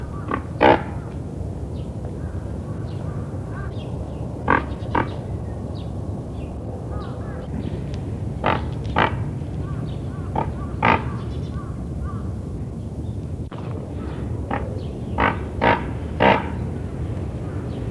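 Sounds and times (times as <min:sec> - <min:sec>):
momoiro pelican calling: 0:00.0 - 0:12.8, 0:13.5 - 0:17.9.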